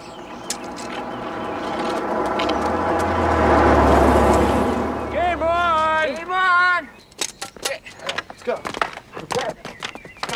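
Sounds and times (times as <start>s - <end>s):
car approaching with engine and tire rumble: 0.0s - 6.9s.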